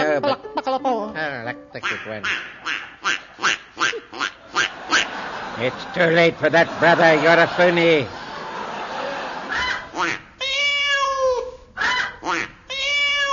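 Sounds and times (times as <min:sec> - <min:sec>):
speech: 0:00.2 - 0:02.6, 0:05.6 - 0:08.2
person imitating duck quacks: 0:01.8 - 0:05.1, 0:09.5 - 0:13.3
laughter: 0:03.2 - 0:10.0
person imitating cat meows: 0:10.0 - 0:13.3.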